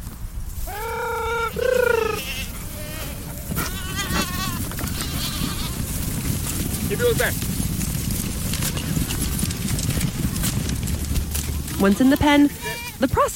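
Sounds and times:
goat hooves shuffling and clattering: 0:00.0 - 0:13.3
herd of goats bleating while moved by a herding dog: 0:00.6 - 0:06.1, 0:12.0 - 0:13.3
speech: 0:06.9 - 0:07.5, 0:11.8 - 0:13.3.

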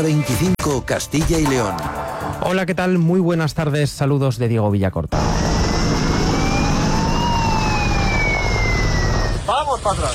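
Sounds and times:
speech: 0:00.0 - 0:05.5, 0:09.8 - 0:10.1
emergency vehicle siren wailing: 0:05.1 - 0:09.5
rumbling traffic-like noise: 0:05.1 - 0:10.1.

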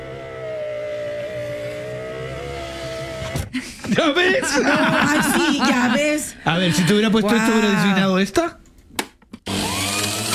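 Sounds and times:
electric juice maker motor whining and humming: 0:00.0 - 0:03.6, 0:09.4 - 0:10.3
speech: 0:03.3 - 0:08.6
laughter: 0:03.5 - 0:08.0.

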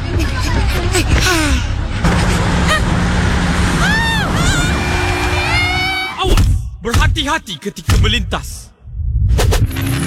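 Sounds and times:
bus engine rumbling as it pulls off: 0:00.0 - 0:09.9
speech: 0:07.2 - 0:08.7.

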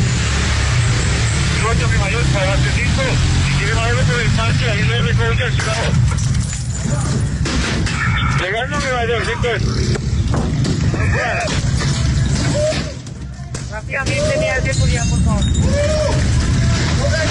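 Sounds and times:
steady rumble of traffic: 0:00.0 - 0:17.2
many overlapping voices shouting in a street confrontation: 0:07.8 - 0:08.7, 0:10.9 - 0:14.7, 0:15.6 - 0:17.2.

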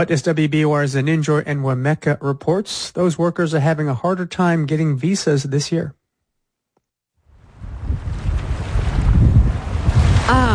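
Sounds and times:
speech: 0:00.0 - 0:06.0, 0:10.3 - 0:10.5
gusty wind buffeting the microphone: 0:07.3 - 0:10.5
ocean surf on the coast: 0:07.5 - 0:10.5.

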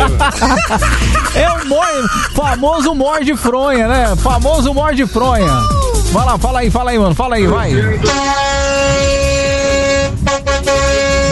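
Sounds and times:
laughter: 0:00.0 - 0:08.3
speech: 0:00.3 - 0:09.7
car horn honking: 0:07.5 - 0:11.2.

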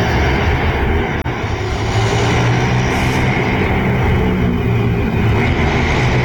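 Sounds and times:
street-racing motorcycles accelerating outdoors: 0:00.0 - 0:06.2.

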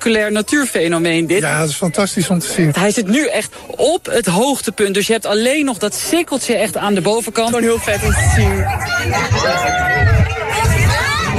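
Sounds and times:
speech: 0:00.0 - 0:10.1
large crowd cheering and shouting: 0:07.5 - 0:11.3.

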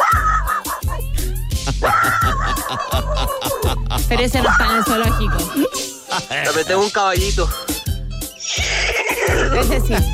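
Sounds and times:
chihuahua yapping: 0:00.0 - 0:01.0
low thumping rhythm: 0:00.0 - 0:08.3, 0:09.3 - 0:10.1
laughter: 0:01.6 - 0:06.7, 0:09.3 - 0:10.1
speech: 0:04.2 - 0:07.7, 0:09.3 - 0:10.1.

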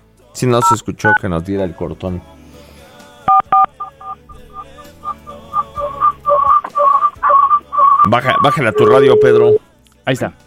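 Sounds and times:
speech: 0:00.4 - 0:02.4, 0:08.1 - 0:10.4
telephone number being dialed with touch tones: 0:00.6 - 0:01.2, 0:03.3 - 0:09.6.

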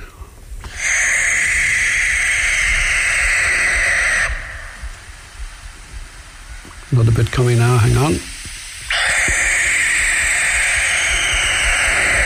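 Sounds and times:
quiet night ambience: 0:00.0 - 0:12.2
barn owl screech at night: 0:00.6 - 0:05.4, 0:08.8 - 0:12.2
speech: 0:07.0 - 0:08.3.

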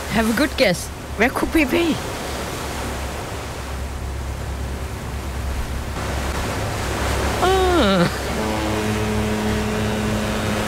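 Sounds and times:
open sea rushing rumble aboard an ocean liner on a sea cruise: 0:00.0 - 0:10.6
speech: 0:00.2 - 0:02.2
sustained low buzzy horn-like drone: 0:06.0 - 0:10.6.

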